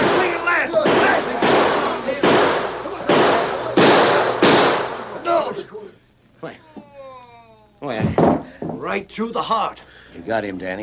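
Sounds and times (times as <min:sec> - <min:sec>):
gunshots in a gunfight: 0:00.0 - 0:05.2
speech: 0:05.6 - 0:06.6, 0:09.0 - 0:10.8.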